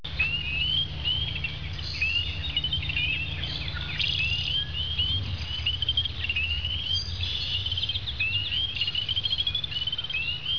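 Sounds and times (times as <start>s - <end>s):
peeper frog calling: 0.1s - 10.5s.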